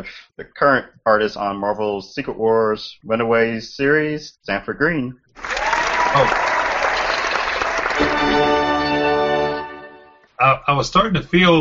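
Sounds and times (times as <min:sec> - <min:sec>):
speech: 0:00.0 - 0:06.6, 0:10.4 - 0:11.5
crowd applause and cheering sound effect: 0:05.4 - 0:10.0
bright tonal swell: 0:08.0 - 0:10.3.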